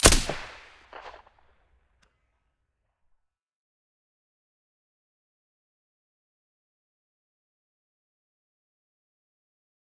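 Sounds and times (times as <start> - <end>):
silenced rifle gunshots in stereo: 0.0 - 1.2.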